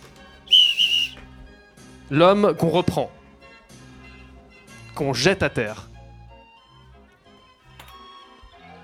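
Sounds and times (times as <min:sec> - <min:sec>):
shrill piercing whistle blast: 0:00.5 - 0:01.2
speech: 0:02.1 - 0:03.2, 0:05.0 - 0:05.9.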